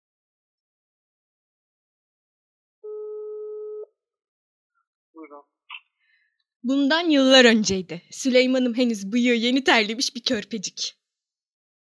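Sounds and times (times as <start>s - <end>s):
telephone ringback tone: 2.9s - 3.8s
speech: 5.2s - 5.8s, 6.6s - 11.0s.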